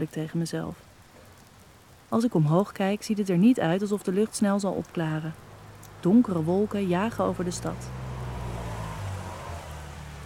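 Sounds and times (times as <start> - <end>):
speech: 0.0 - 0.9, 2.1 - 8.0
car engine rumbling as the car pulls up and stops at the curb: 5.4 - 10.2.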